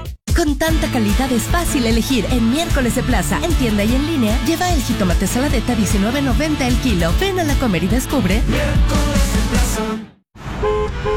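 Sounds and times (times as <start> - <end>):
speech: 0.4 - 10.1
dense road noise: 10.4 - 11.1
car horns honking in a traffic jam: 10.5 - 11.1.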